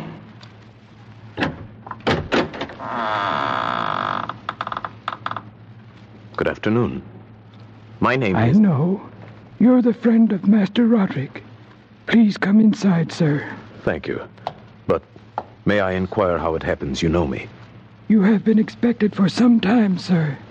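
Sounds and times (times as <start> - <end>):
massive wooden door grinding creak opening: 1.4 - 5.5
speech: 2.9 - 3.3, 6.5 - 7.1, 8.0 - 11.4, 12.1 - 15.1, 15.7 - 20.4.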